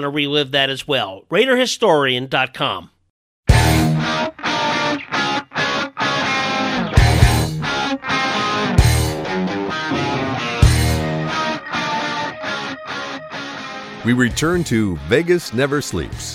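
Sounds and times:
speech: 0:00.0 - 0:03.0, 0:14.1 - 0:16.3
rock song by a band: 0:03.5 - 0:14.7
heavy distorted guitar: 0:03.5 - 0:14.8.

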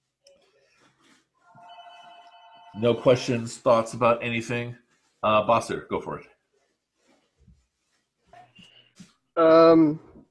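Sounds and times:
rustling noise: 0:00.0 - 0:02.7, 0:06.2 - 0:09.2
landline house phone ringing with electronic trill: 0:01.5 - 0:03.3
speech: 0:02.8 - 0:06.3, 0:09.4 - 0:10.1.

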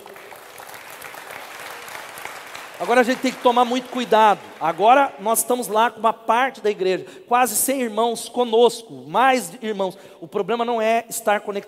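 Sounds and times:
church audience applauding: 0:00.0 - 0:05.1
speech: 0:02.8 - 0:11.6.

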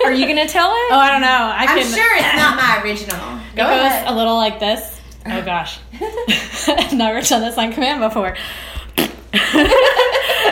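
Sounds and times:
speech: 0:00.1 - 0:10.5
laughter: 0:05.9 - 0:07.4, 0:09.3 - 0:10.5
woman blowing a wet buzzing raspberry imitating a fart: 0:09.0 - 0:09.4.

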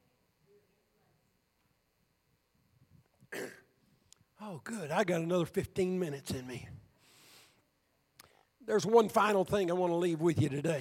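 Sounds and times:
person clearing throat: 0:03.3 - 0:03.8
person coughing: 0:03.3 - 0:03.8
speech: 0:04.5 - 0:06.8, 0:08.7 - 0:10.8.

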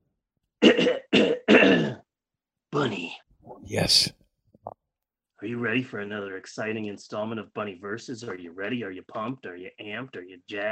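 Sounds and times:
person clearing throat: 0:00.6 - 0:02.1
speech: 0:02.8 - 0:04.2, 0:05.4 - 0:10.7.

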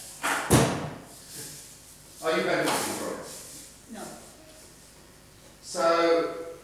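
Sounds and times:
wooden chair set down firmly on the floor: 0:00.2 - 0:01.1
speech: 0:02.3 - 0:03.0.

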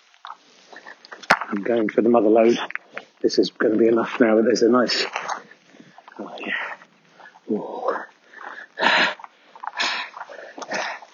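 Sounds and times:
speech: 0:01.5 - 0:05.3
heavy labored breathing: 0:05.1 - 0:11.1.

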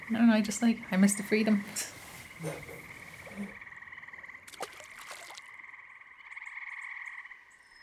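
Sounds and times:
dense chorus of frogs croaking: 0:00.0 - 0:07.8
speech: 0:00.1 - 0:03.6
brief splashy bursts: 0:04.5 - 0:05.5.

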